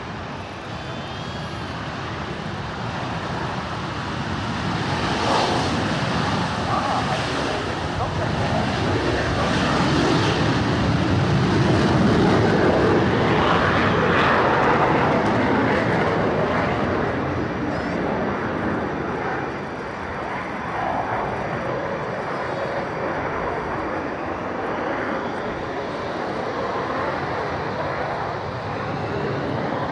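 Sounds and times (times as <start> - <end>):
Rafale and Super Etendard jets roaring in a flying display: 0.0 - 29.9.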